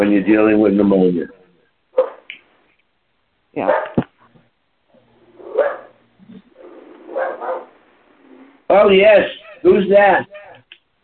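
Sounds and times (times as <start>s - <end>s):
speech: 0.0s - 1.4s, 3.6s - 3.9s, 8.7s - 10.4s
dog barking: 2.0s - 2.3s, 3.6s - 4.1s, 5.4s - 6.0s, 6.6s - 7.8s.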